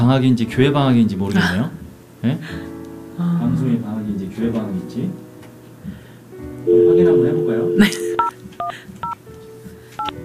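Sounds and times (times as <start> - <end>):
speech: 0.1 - 5.2, 6.6 - 9.1
telephone keypad dialing tones as a call is placed: 6.7 - 9.2.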